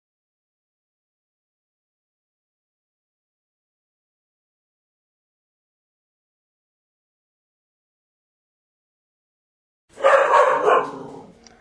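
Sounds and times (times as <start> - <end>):
pet dog barking in a home: 10.0 - 11.3.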